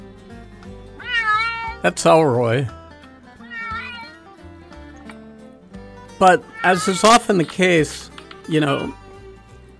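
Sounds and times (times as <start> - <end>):
cat meowing: 1.0 - 1.9, 3.4 - 4.2, 6.3 - 7.3, 8.7 - 9.0
speech: 1.8 - 2.8, 6.2 - 9.0.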